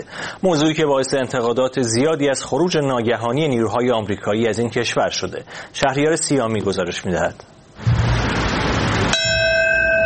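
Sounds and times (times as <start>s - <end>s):
speech: 0.0s - 7.9s
deep memorial bell strike in New York: 9.1s - 10.0s.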